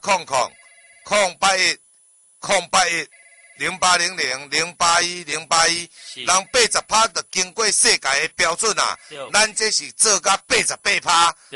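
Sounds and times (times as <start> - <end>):
speech: 0.1 - 0.5, 1.1 - 1.8, 2.4 - 11.5
telephone ringing: 0.3 - 1.4, 2.9 - 4.4, 6.0 - 7.1, 8.5 - 9.6
voice-like harmonic bursts: 8.7 - 9.4.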